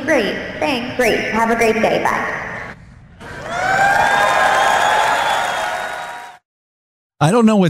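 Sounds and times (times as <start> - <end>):
speech: 0.0 - 2.5, 7.2 - 7.6
crowd cheering and whooping: 3.2 - 6.4
applause-like noise: 3.5 - 6.4.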